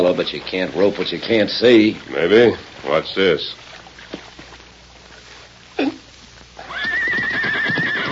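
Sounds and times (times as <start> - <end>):
speech: 0.0 - 3.7
horse whinnying: 6.6 - 8.1.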